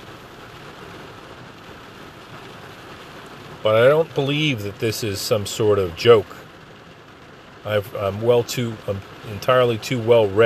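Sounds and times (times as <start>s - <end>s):
steady rain pattering on a surface: 0.0s - 10.4s
speech: 3.6s - 6.4s, 7.6s - 10.4s.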